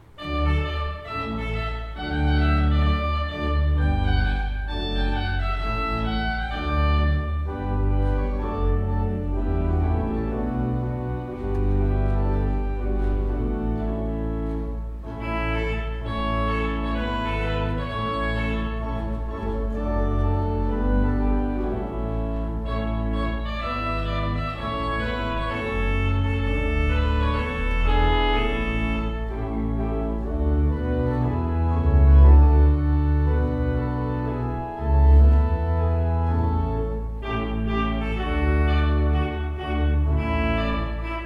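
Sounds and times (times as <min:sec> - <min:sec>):
pipe organ: 0:00.0 - 0:41.2.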